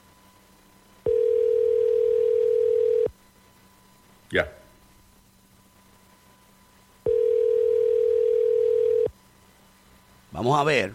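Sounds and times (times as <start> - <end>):
ringback tone on an outgoing phone call: 1.0 - 3.1, 7.1 - 9.1
speech: 4.3 - 4.6, 10.4 - 10.9.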